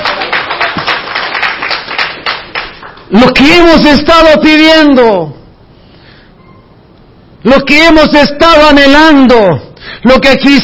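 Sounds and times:
crowd clapping hands in a steady energetic rhythm as praise: 0.0s - 3.4s
speech: 3.1s - 5.4s, 7.4s - 10.6s.

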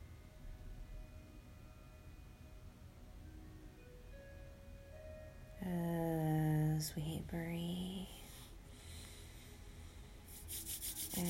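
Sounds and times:
speech: 5.6s - 6.0s, 7.0s - 8.2s
hands rubbing briskly together to warm them: 10.3s - 11.2s.

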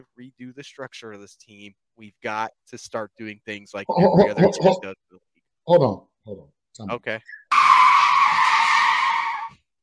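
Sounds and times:
speech: 0.0s - 7.4s
car tires skidding to a stop: 7.5s - 9.6s.

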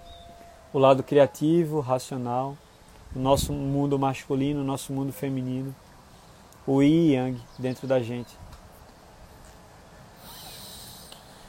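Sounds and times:
speech: 0.7s - 5.8s, 6.6s - 8.4s
alternate-nostril breathing through the nose: 10.2s - 11.4s.

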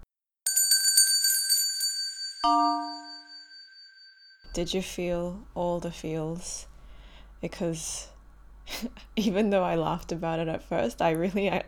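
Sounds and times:
bright bell-like chiming tones in gentle music: 0.5s - 4.5s
speech: 2.4s - 3.0s, 4.5s - 6.7s, 7.4s - 8.1s, 8.7s - 11.6s.

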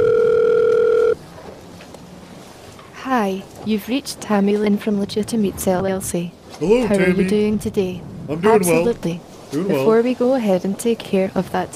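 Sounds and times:
outgoing call ringback tone through the phone line: 0.0s - 1.2s
speech: 3.2s - 11.7s.

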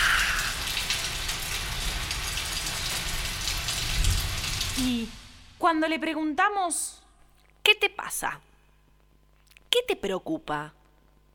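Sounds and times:
steady rain falling: 0.0s - 5.6s
speech: 4.8s - 7.0s, 7.7s - 8.5s, 9.7s - 10.8s.

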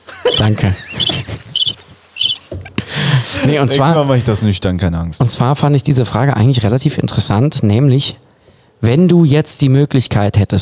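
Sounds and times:
laughter: 0.0s - 1.9s, 2.8s - 3.9s
cricket chirping: 0.3s - 2.5s
speech: 0.4s - 1.8s, 3.3s - 10.6s.

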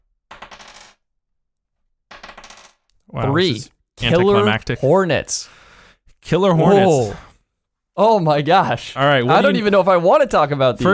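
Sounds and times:
dice rolling on a hard tabletop: 0.3s - 1.0s, 2.1s - 3.0s
speech: 3.1s - 5.6s, 6.2s - 7.3s, 8.0s - 10.9s.

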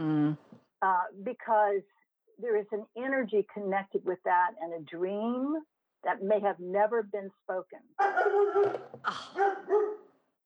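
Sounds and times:
speech: 0.0s - 10.0s
dog barking: 8.0s - 10.1s.

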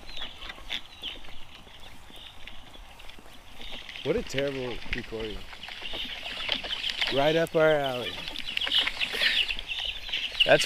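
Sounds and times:
ducks calling on a farm: 0.0s - 10.6s
speech: 4.0s - 6.1s, 7.1s - 8.3s, 10.4s - 10.6s.

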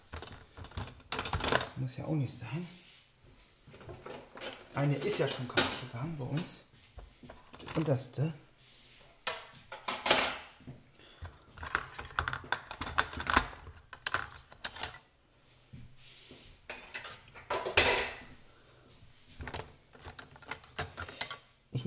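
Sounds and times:
metal cutlery rattling and clattering in a drawer: 0.0s - 1.8s, 3.7s - 6.6s, 7.4s - 8.0s, 11.6s - 15.1s, 16.7s - 18.2s, 19.4s - 21.5s
speech: 1.8s - 2.8s, 4.8s - 6.7s, 7.7s - 8.4s.

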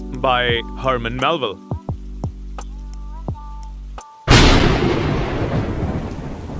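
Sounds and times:
soft low tones: 0.0s - 4.4s
hiss of sharp rain: 0.0s - 6.5s
speech: 0.2s - 1.7s
thunderclap overhead among hills and valleys: 4.3s - 6.5s.

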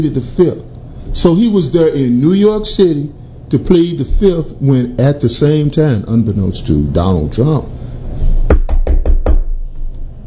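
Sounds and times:
speech: 0.0s - 7.8s
knocking on a door: 8.5s - 9.6s.

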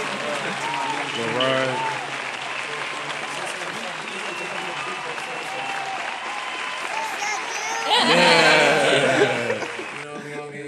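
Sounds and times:
crowd laughter: 0.0s - 1.8s, 7.0s - 10.6s
crowd applause: 0.0s - 10.5s.

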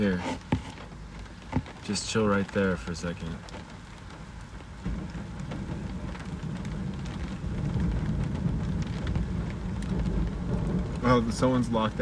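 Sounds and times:
speech: 0.0s - 0.5s, 1.9s - 3.7s, 11.0s - 12.0s
heavy rain hissing during a rainstorm: 0.0s - 12.0s
deep low rumble of thunder during a storm: 3.5s - 12.0s.

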